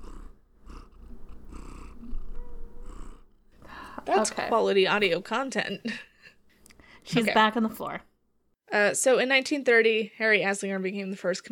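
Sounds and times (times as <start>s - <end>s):
cat purring into microphone: 0.0s - 5.2s
speech: 4.0s - 6.1s, 7.1s - 8.1s, 8.7s - 11.5s.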